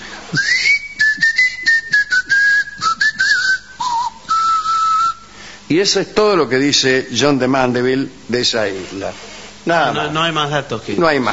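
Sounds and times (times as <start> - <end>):
speech: 0.3 - 0.6, 5.7 - 11.3
person whistling a melodic line: 0.3 - 5.3.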